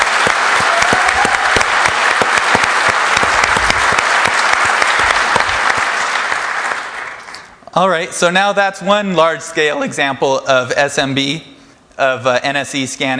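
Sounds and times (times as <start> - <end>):
audience applause: 0.0 - 7.5
speech: 7.8 - 13.1.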